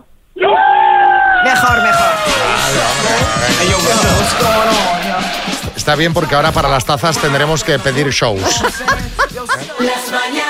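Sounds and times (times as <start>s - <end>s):
several people shouting together in studio: 0.4s - 5.8s
scattered cheering and shouts: 0.4s - 7.4s
laughter: 1.7s - 9.9s
speech: 5.4s - 9.2s.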